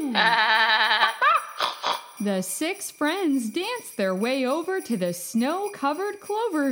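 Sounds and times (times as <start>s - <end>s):
sheep bleating in a snow-covered clover field: 0.2s - 1.2s
speech: 2.2s - 6.6s.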